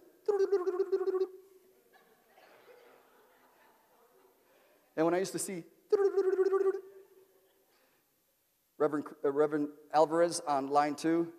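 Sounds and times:
speech: 0:00.2 - 0:01.4, 0:05.0 - 0:06.7, 0:08.8 - 0:11.3
voice imitating a phone ringing: 0:00.3 - 0:01.3, 0:05.9 - 0:06.8.

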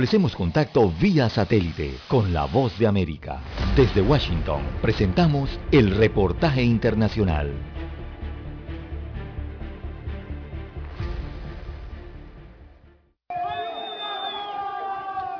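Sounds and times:
speech: 0:00.0 - 0:07.8
prison inmates shouting for help after a riot at the Turi detention center: 0:13.3 - 0:15.3
shrill wavering cries: 0:13.3 - 0:15.3.

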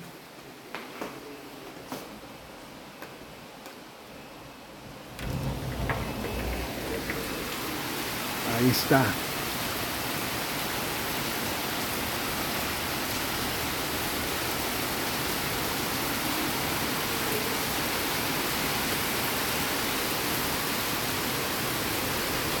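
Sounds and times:
heavy rain pouring: 0:04.7 - 0:22.5
speech: 0:08.6 - 0:09.2.

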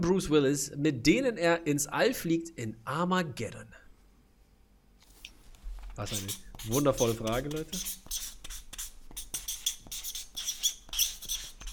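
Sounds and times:
speech: 0:00.0 - 0:03.8, 0:06.0 - 0:08.4
felt-tip pens squeaking against paper: 0:06.0 - 0:11.7.

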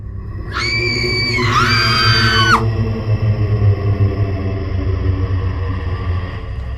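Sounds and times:
low rumbling background: 0:00.0 - 0:06.7
people screaming in terror: 0:00.4 - 0:02.7.

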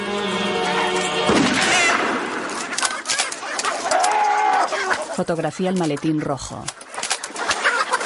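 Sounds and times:
flock of chickens clucking and squawking as they are scared off: 0:00.6 - 0:08.0
sudden sharp burst: 0:01.2 - 0:02.6
speech: 0:05.2 - 0:06.8.

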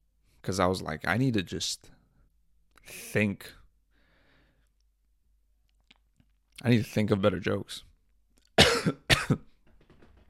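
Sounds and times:
speech: 0:00.5 - 0:02.0, 0:02.8 - 0:03.6, 0:06.6 - 0:07.9, 0:08.8 - 0:09.5
harsh loud coughs with throaty tail: 0:08.6 - 0:09.5.

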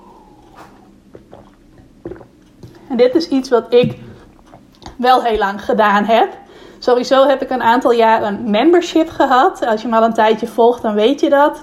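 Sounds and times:
sipping and swallowing water: 0:00.0 - 0:05.0
speech: 0:02.9 - 0:04.0, 0:05.0 - 0:11.6.

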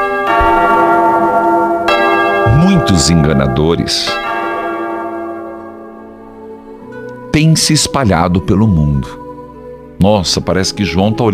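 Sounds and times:
church bell ringing: 0:00.0 - 0:07.0
speech: 0:02.8 - 0:04.3, 0:07.4 - 0:09.2, 0:10.0 - 0:11.3.

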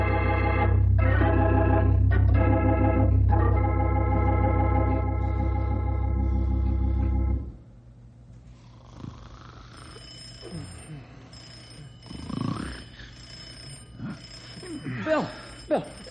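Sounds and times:
telephone ringing: 0:00.0 - 0:05.2, 0:09.7 - 0:16.0
steady tonal hum: 0:00.0 - 0:16.0.

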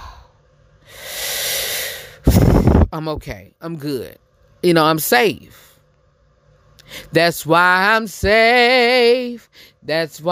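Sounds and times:
deep breath: 0:00.0 - 0:02.8, 0:06.8 - 0:07.1, 0:09.5 - 0:09.8
speech: 0:03.0 - 0:05.7, 0:06.9 - 0:10.3.

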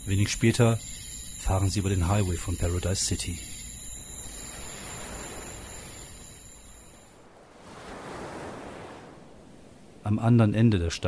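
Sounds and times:
speech: 0:00.1 - 0:03.5, 0:10.1 - 0:11.0
gentle waves of a calm sea washing onto a beach near a harbor at night: 0:04.0 - 0:10.1.

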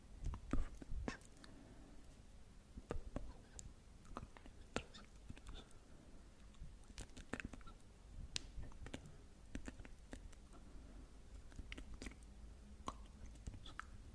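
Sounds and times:
wet mouth clicks, smacks and chewing-like pops: 0:00.2 - 0:01.5, 0:02.8 - 0:05.8, 0:06.5 - 0:07.8, 0:08.6 - 0:10.6, 0:11.3 - 0:14.0.

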